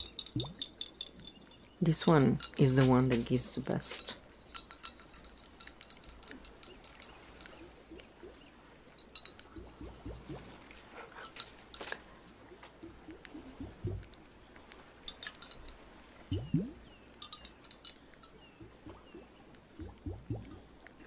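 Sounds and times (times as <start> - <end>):
soft bubbling: 0.0 - 2.6, 4.2 - 21.0
light glassy clinks: 0.0 - 8.0, 8.9 - 10.0, 11.1 - 12.4, 14.9 - 15.9, 17.2 - 18.6
water sloshing and gurgling inside a closed glass container: 0.0 - 21.0
speech: 0.4 - 0.6, 1.8 - 4.1.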